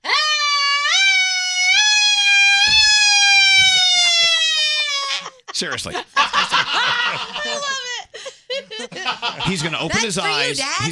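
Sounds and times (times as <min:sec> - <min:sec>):
person vocally imitating a siren: 0:00.0 - 0:05.3
laughter: 0:05.0 - 0:10.9
speech: 0:05.6 - 0:07.9, 0:09.1 - 0:10.9.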